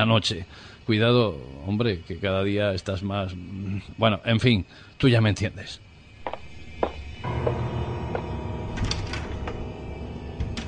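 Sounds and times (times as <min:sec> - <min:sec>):
speech: 0:00.0 - 0:05.9
steady low rumble of room noise: 0:06.1 - 0:10.6
sharp knocks and clicks: 0:06.2 - 0:09.7
bathroom door pushed open and shut: 0:06.2 - 0:10.6.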